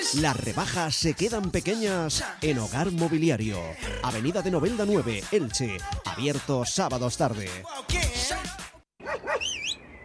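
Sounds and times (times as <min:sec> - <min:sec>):
speech: 0:00.1 - 0:08.6
dog barking: 0:09.0 - 0:09.6
dog whining yelp: 0:09.0 - 0:09.8.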